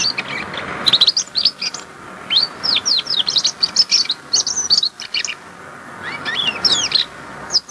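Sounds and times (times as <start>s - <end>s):
domestic canary singing: 0.0s - 7.6s.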